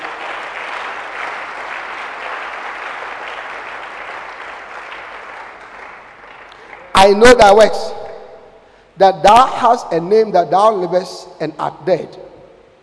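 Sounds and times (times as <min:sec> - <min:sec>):
audience clapping hands: 0:00.0 - 0:07.2
speech: 0:07.0 - 0:08.0, 0:09.0 - 0:12.3.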